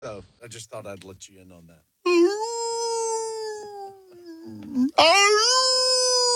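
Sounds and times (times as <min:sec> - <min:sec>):
speech: 0:00.0 - 0:02.5, 0:04.4 - 0:05.8
coyotes howling: 0:02.1 - 0:06.3.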